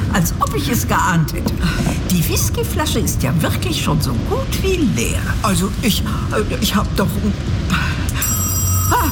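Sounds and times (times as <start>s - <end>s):
speech: 0.2s - 8.3s
telephone bell ringing: 8.2s - 9.1s.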